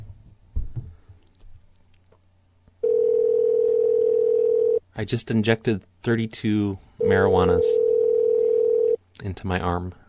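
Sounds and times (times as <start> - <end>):
telephone dial tone when redialing: 2.8 - 4.8, 7.8 - 9.0
speech: 5.0 - 7.8, 9.2 - 10.0.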